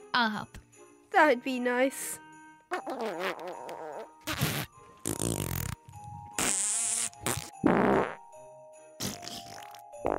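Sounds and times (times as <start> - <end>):
speech: 0.2 - 3.8
fart noises blown with the mouth: 2.7 - 8.2, 9.0 - 10.1.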